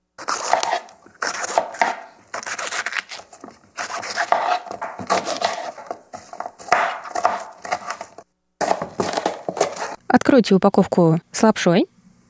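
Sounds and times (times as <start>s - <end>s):
knife chopping green onions on a board: 0.2s - 10.0s
speech: 10.1s - 11.9s.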